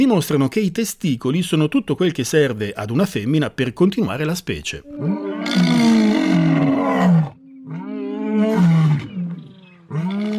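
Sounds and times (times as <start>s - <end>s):
speech: 0.0s - 5.7s
lion roaring: 4.8s - 10.3s.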